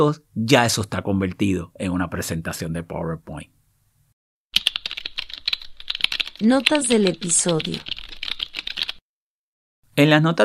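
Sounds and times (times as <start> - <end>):
speech: 0.0 - 3.6, 6.4 - 8.0, 10.0 - 10.4
rapid typing on an external computer keyboard into a text editor: 4.6 - 9.0.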